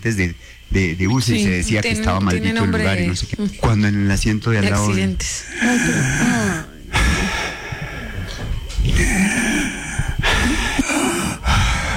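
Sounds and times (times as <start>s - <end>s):
speech: 0.0s - 7.4s
voice imitating heavy breathing through the mouth: 5.5s - 11.9s.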